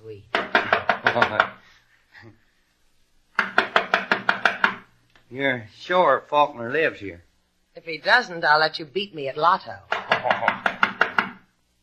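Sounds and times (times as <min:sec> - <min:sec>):
sharp knocks on a door: 0:00.3 - 0:01.6, 0:03.4 - 0:04.9, 0:09.9 - 0:11.5
speech: 0:01.2 - 0:01.6, 0:05.3 - 0:10.8.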